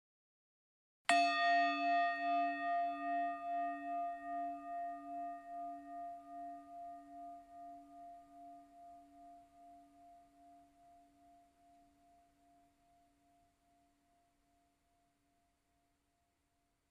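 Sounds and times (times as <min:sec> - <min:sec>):
single meditation bell rung to end a meditation: 0:01.1 - 0:13.4.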